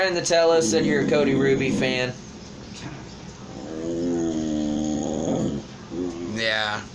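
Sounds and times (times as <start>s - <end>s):
speech: 0.0s - 2.2s, 6.4s - 6.9s
dog letting out a long low moaning vocalization: 0.3s - 2.2s, 3.4s - 6.5s.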